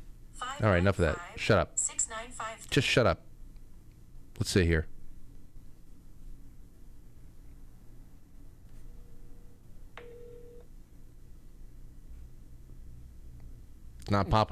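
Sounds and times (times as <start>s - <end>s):
speech: 0.6s - 3.3s, 4.4s - 5.0s, 14.1s - 14.5s
outgoing phone call electronic ringing tone: 8.9s - 10.7s.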